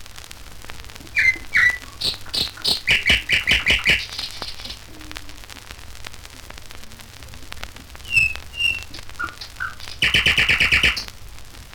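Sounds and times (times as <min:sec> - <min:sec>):
nightingale song: 0:01.0 - 0:05.3, 0:07.9 - 0:11.1.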